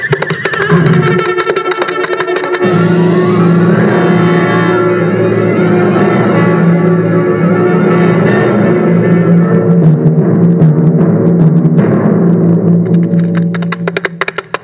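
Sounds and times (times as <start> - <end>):
horse whinnying: 0.0 - 1.6
steady sustained droning tone: 0.0 - 14.6.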